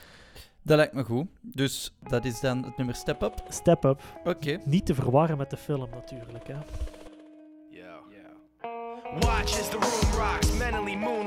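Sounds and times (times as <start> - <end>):
speech: 0.6 - 7.0, 9.1 - 11.2
opening of a rap rock song: 9.0 - 11.2.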